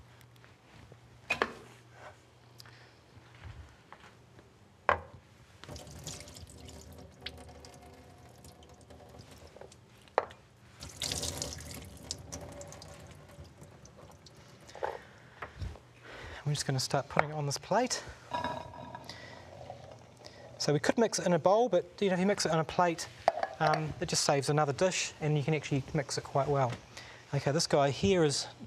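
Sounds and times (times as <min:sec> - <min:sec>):
liquid draining from two cans of chickpeas: 0:05.6 - 0:09.9, 0:10.8 - 0:14.8
speech: 0:16.5 - 0:18.2, 0:20.7 - 0:28.6.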